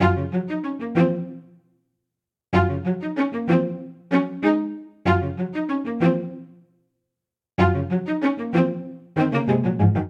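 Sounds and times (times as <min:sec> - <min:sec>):
string quartet ostinato in G flat major: 0:00.0 - 0:01.5, 0:02.6 - 0:06.5, 0:07.6 - 0:10.0.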